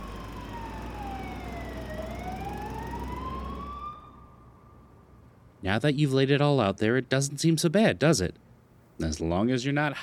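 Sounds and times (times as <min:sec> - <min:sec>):
approaching emergency vehicle siren wailing: 0:00.0 - 0:05.1
steady low traffic rumble: 0:00.0 - 0:08.9
speech: 0:05.6 - 0:08.4, 0:09.0 - 0:10.0.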